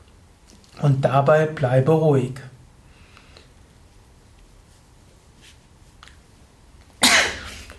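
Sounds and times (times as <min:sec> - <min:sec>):
speech: 0:00.8 - 0:02.5
person sneezing: 0:07.0 - 0:07.7.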